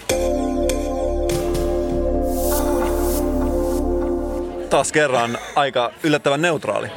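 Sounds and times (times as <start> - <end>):
electronic city sound-logo jingle with layered synth tones: 0.4 - 5.2
speech: 4.7 - 6.9.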